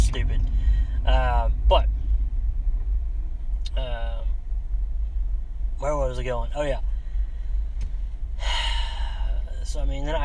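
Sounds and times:
deep car engine rumble while driving in traffic: 0:00.0 - 0:10.2
speech: 0:06.2 - 0:06.9, 0:09.7 - 0:10.2.

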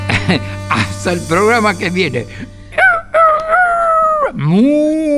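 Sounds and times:
laughter: 0:00.1 - 0:00.9
speech: 0:00.3 - 0:02.6, 0:04.4 - 0:05.1
rooster crowing: 0:02.7 - 0:04.3.

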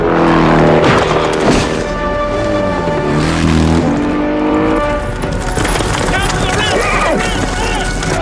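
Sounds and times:
motorcycle engine revving loudly in a film chase scene: 0:00.0 - 0:08.1
voices: 0:05.9 - 0:08.1.

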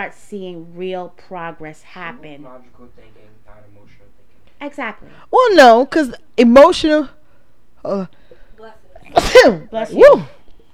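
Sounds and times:
speech: 0:00.0 - 0:07.2, 0:07.8 - 0:10.4
person sneezing loudly: 0:09.0 - 0:10.4.

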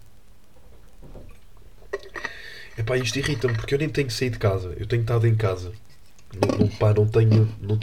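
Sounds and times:
person sipping water: 0:01.3 - 0:03.6
speech: 0:02.8 - 0:07.8.

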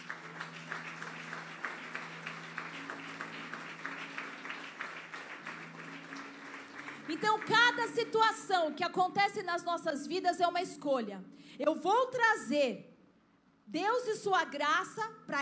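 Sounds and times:
audience applauding at a sermon: 0:00.0 - 0:08.2
speech: 0:07.1 - 0:12.9, 0:13.7 - 0:15.3.

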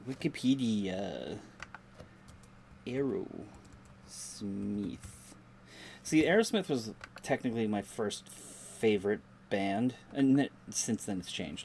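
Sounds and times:
speech: 0:00.0 - 0:01.6, 0:02.9 - 0:11.6
typing on a computer keyboard: 0:01.6 - 0:02.5, 0:03.5 - 0:04.0.

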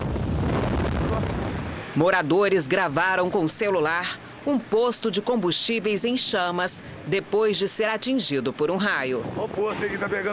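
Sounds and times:
strong storm wind buffeting the microphone: 0:00.0 - 0:02.3, 0:09.0 - 0:10.3
speech: 0:02.0 - 0:10.3.

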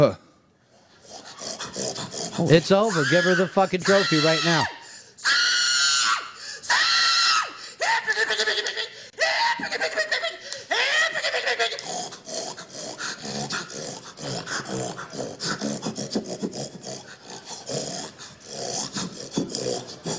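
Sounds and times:
speech: 0:00.0 - 0:00.2, 0:01.8 - 0:04.8
woman imitating a hog grunting and snorting: 0:01.0 - 0:03.0, 0:11.7 - 0:20.1
woman imitating a hog squealing: 0:01.2 - 0:10.1
laughter: 0:07.9 - 0:12.0.

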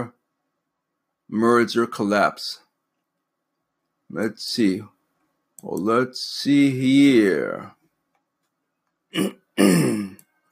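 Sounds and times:
speech: 0:01.3 - 0:02.6, 0:04.1 - 0:04.9, 0:05.6 - 0:07.8, 0:09.1 - 0:09.9
person clearing throat: 0:09.1 - 0:10.2.

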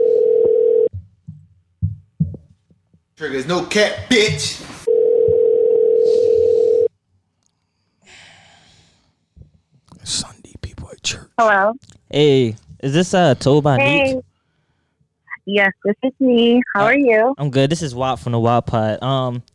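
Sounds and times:
phone call ringing tone: 0:00.0 - 0:00.9, 0:04.9 - 0:06.9
speech: 0:03.2 - 0:04.7, 0:11.4 - 0:14.3, 0:15.4 - 0:19.5.

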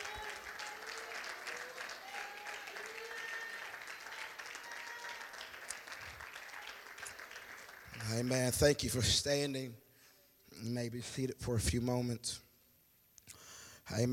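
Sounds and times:
audience applause: 0:00.0 - 0:08.6
speech: 0:08.1 - 0:09.8, 0:10.6 - 0:12.4, 0:13.9 - 0:14.1.

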